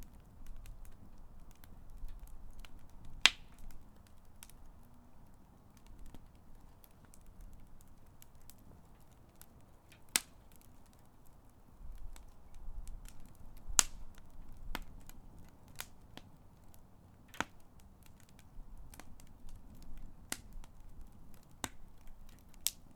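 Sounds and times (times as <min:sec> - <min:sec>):
fire crackling and popping: 0:00.0 - 0:22.9.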